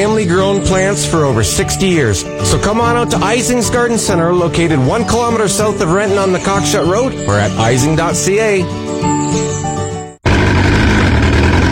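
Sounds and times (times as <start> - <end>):
speech: 0.0 - 9.6
outboard boat motor running: 10.2 - 11.7.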